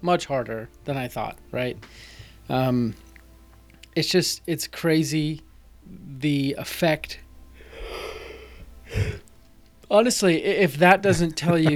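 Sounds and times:
speech: 0.0s - 3.0s, 4.0s - 7.2s, 9.9s - 11.7s
long breathy yawn: 7.6s - 9.2s
laughter: 10.8s - 11.7s.

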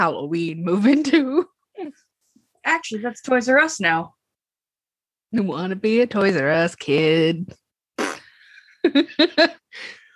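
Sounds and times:
speech: 0.0s - 2.0s, 2.6s - 4.2s, 5.3s - 7.6s, 8.8s - 10.0s
person blowing a raspberry-like fart noise with their mouth: 8.0s - 8.4s.

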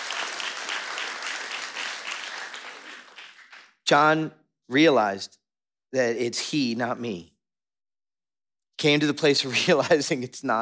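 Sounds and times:
audience applause: 0.0s - 3.8s
speech: 3.9s - 7.3s, 8.8s - 10.5s.

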